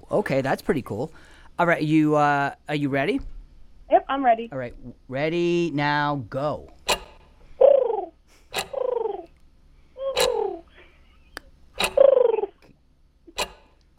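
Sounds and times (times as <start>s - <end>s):
speech: 0.1s - 3.3s, 3.9s - 6.8s
person in a studio imitating a pigeon call: 7.6s - 8.2s, 8.8s - 9.4s, 10.0s - 10.7s, 12.0s - 12.7s
sharp clicks: 11.3s - 13.9s.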